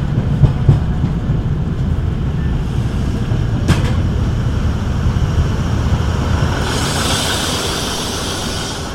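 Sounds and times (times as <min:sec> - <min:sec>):
passenger railcar rumbling on tracks: 0:00.0 - 0:08.9
rail clacks: 0:00.0 - 0:08.9
railcar wheel hiss: 0:02.6 - 0:08.9.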